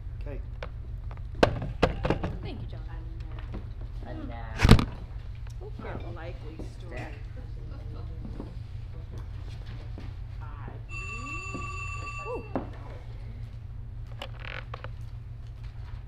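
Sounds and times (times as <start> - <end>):
constant low hum: 0.0 - 16.0
speech: 0.3 - 0.5, 6.0 - 7.4
telephone ringing with a steady electronic tone: 10.9 - 12.8.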